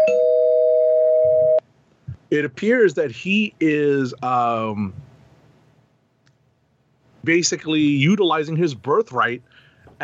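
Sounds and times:
electronic bell tone rung as a spoiler alert: 0:00.0 - 0:01.6
speech: 0:02.3 - 0:05.0, 0:07.2 - 0:10.0.

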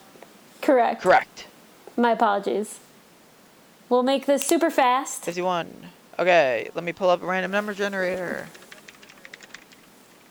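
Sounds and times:
speech: 0:00.7 - 0:02.8, 0:03.9 - 0:08.6
quick uneven keystrokes on a computer keyboard: 0:06.7 - 0:10.2.

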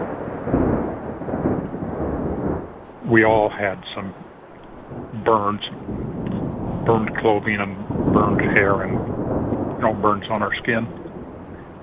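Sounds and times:
deep sustained rumble of thunder: 0:00.0 - 0:11.8
speech: 0:03.1 - 0:04.3, 0:05.1 - 0:06.0, 0:06.9 - 0:09.2, 0:09.8 - 0:11.0.

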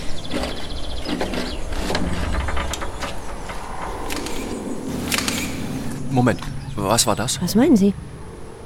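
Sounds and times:
rumbling hum: 0:00.0 - 0:08.6
camera whirring at a mausoleum: 0:04.0 - 0:06.0
speech: 0:06.2 - 0:08.1.

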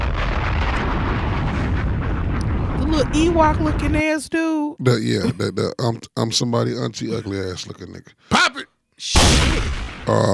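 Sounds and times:
loud bomb explosion sound effect: 0:00.0 - 0:04.1, 0:09.2 - 0:10.3
speech: 0:03.0 - 0:10.3.

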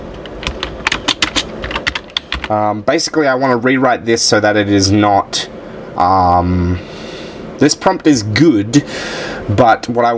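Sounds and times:
keys clacking on a computer keyboard: 0:00.2 - 0:02.6
speech: 0:02.5 - 0:07.0, 0:07.6 - 0:10.1.

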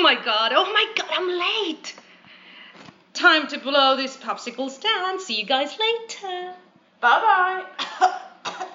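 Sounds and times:
speech: 0:00.1 - 0:02.0, 0:03.2 - 0:08.2
person coughing: 0:07.8 - 0:08.7.

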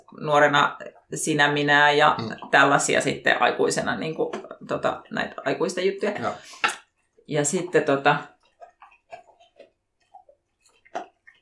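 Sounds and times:
speech: 0:00.1 - 0:06.7, 0:07.3 - 0:08.3
dog gnawing on a chew bone: 0:06.8 - 0:11.4.

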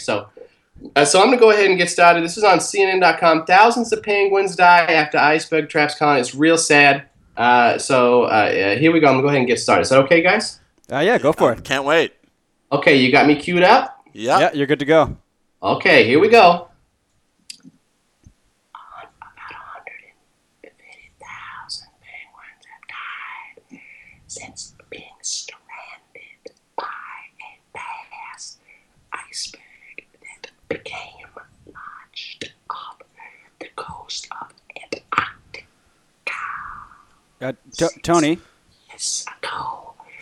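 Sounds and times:
speech: 0:00.0 - 0:16.7, 0:37.4 - 0:39.8
person whispering closely for ASMR: 0:10.9 - 0:12.1, 0:14.2 - 0:15.1.

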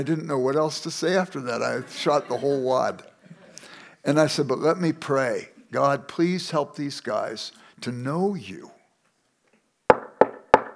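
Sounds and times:
speech: 0:00.0 - 0:03.1, 0:04.0 - 0:08.7
laughter: 0:01.4 - 0:03.7
firm knocks on a wooden door: 0:09.9 - 0:10.7.

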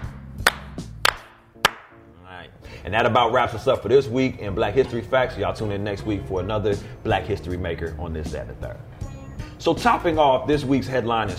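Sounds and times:
slow hand claps: 0:00.0 - 0:02.1
low hum: 0:02.1 - 0:11.3
speech: 0:02.8 - 0:09.0, 0:09.6 - 0:11.3.

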